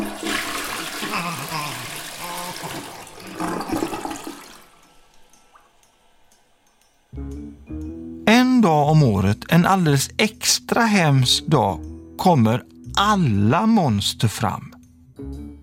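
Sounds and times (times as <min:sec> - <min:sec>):
shower water running: 0:00.0 - 0:06.0
speech: 0:08.6 - 0:14.7.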